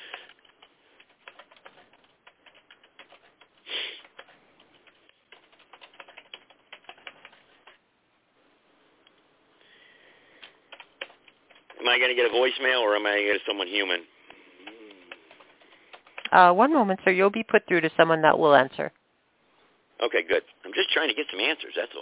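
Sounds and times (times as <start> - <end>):
keyboard typing in the background of a phone call: 0.0 - 7.8, 10.3 - 12.1, 13.5 - 16.3
speech: 11.9 - 14.1, 16.3 - 19.0, 20.1 - 22.0.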